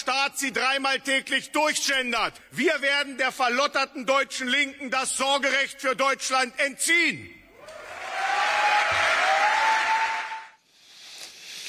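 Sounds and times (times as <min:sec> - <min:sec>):
speech: 0:00.2 - 0:07.4
large crowd at an AfD rally cheering and applauding: 0:07.6 - 0:10.6.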